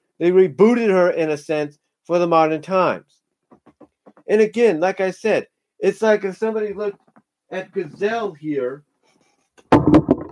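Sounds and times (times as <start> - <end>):
speech: 0.2 - 3.2, 4.3 - 8.9
microphone cord bumped: 3.5 - 4.3, 9.6 - 10.2.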